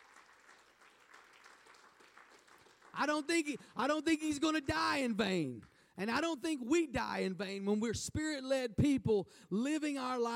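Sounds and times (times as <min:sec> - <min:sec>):
crowd clapping in praise: 0:00.0 - 0:05.9
speech: 0:02.9 - 0:10.3.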